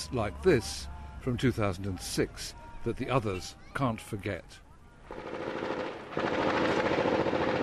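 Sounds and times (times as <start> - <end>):
speech: 0.1 - 5.4
automatic gunfire bursts at dawn: 5.1 - 7.6.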